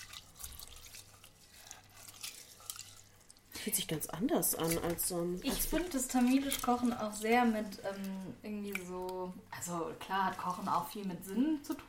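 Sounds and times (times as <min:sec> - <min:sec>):
low hum: 0:00.0 - 0:11.8
water sloshing and dripping as food is washed by hand in a bowl: 0:00.0 - 0:11.8
speech: 0:03.6 - 0:11.8.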